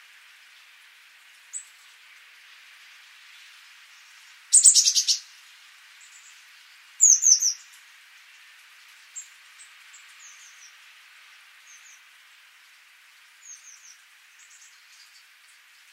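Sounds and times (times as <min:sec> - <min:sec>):
background hiss: 0:00.0 - 0:15.9
Eurasian blue tit Cyanistes caeruleus scratchy churring calls: 0:04.5 - 0:05.3, 0:07.0 - 0:07.6.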